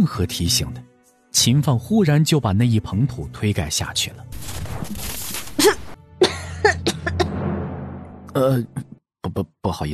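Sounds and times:
speech: 0.0s - 5.8s, 8.4s - 9.9s
person coughing after choking on dust: 5.6s - 7.3s.

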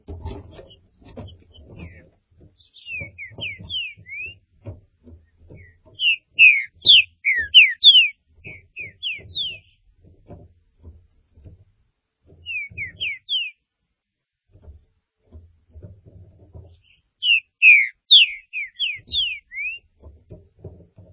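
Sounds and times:
green-winged saltator whistling: 2.8s - 4.4s, 5.6s - 9.5s, 12.5s - 13.5s, 17.2s - 19.8s.

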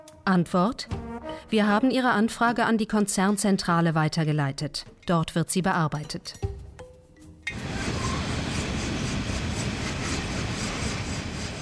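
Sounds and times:
speech: 0.3s - 6.5s
coal train with up to 100 open wagons rumbling and rattling: 7.5s - 11.6s.

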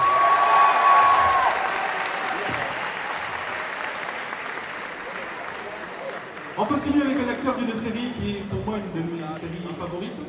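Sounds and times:
audience applause welcoming a guest at a game show convention opening ceremony: 0.0s - 7.8s
speech: 6.8s - 10.2s.

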